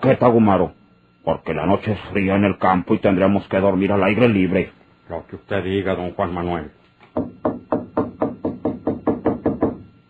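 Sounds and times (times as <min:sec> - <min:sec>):
speech: 0:00.0 - 0:07.3
firm knocking on a door: 0:07.1 - 0:09.9.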